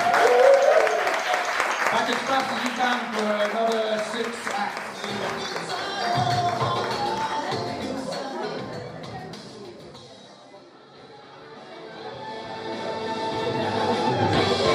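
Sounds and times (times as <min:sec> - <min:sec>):
people cheering: 0:00.0 - 0:07.7, 0:13.4 - 0:14.7
audience applauding for the teams: 0:00.0 - 0:08.0.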